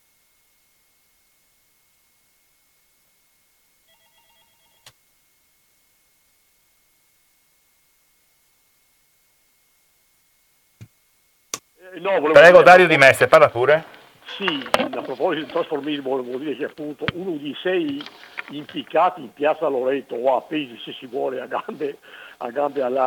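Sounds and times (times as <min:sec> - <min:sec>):
quiet hiss: 0:00.0 - 0:23.0
faint electronic telephone ringing from incoming call: 0:03.9 - 0:04.9
speech: 0:11.8 - 0:23.0.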